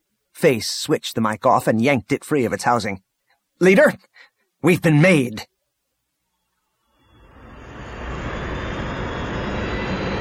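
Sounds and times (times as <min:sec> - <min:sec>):
speech: 0:00.4 - 0:05.5
starfighter engines roaring while descending to land: 0:07.0 - 0:10.2.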